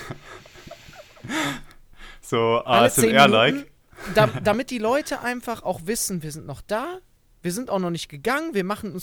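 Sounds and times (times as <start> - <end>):
person breathing heavily on purpose with a slight voiced groan: 0.0 - 2.3
speech: 2.3 - 9.0.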